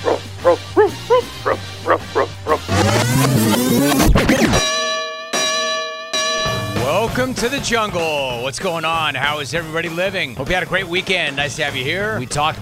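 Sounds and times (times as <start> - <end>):
dog barking: 0.0 - 2.7
dense burst of music with sustained ringing notes: 0.1 - 8.0
low droning tone: 2.8 - 7.2
speech: 7.4 - 12.6.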